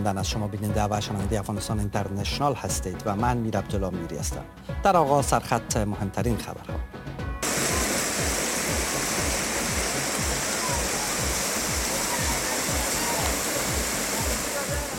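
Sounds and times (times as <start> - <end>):
speech: 0.0 - 6.9
floodwater rushing through city streets: 7.4 - 14.9.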